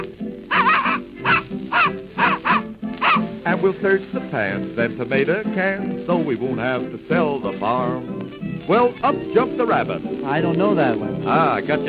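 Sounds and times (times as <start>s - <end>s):
human voice imitating a little dog barking: 0.5s - 3.2s
speech: 3.6s - 11.8s.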